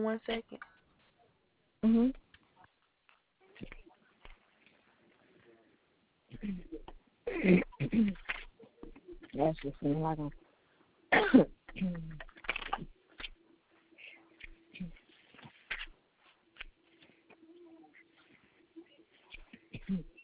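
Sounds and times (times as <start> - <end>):
speech: 0.0 - 0.8, 1.8 - 2.2, 6.4 - 8.3, 9.4 - 10.4, 11.1 - 12.9, 19.9 - 20.1
faint steady hum: 0.0 - 20.2
harsh rasping coughs: 7.3 - 8.3, 11.1 - 11.6, 19.4 - 20.1.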